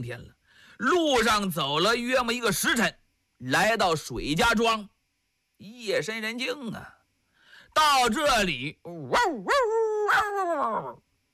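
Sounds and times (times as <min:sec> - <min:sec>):
speech: 0:00.0 - 0:04.9, 0:05.6 - 0:07.0, 0:07.7 - 0:11.1
stray and household dogs barking at night in a village: 0:09.1 - 0:10.4.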